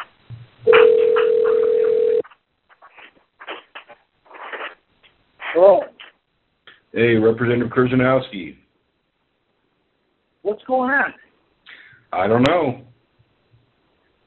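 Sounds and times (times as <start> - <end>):
phone line dial tone: 0.7 - 2.2
speech: 7.0 - 8.6, 10.7 - 11.2, 12.2 - 12.8.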